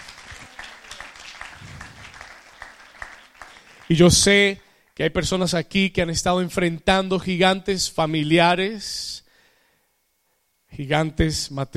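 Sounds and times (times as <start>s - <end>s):
crowd applauding: 0.0s - 4.5s
speech: 3.9s - 9.2s, 10.7s - 11.7s.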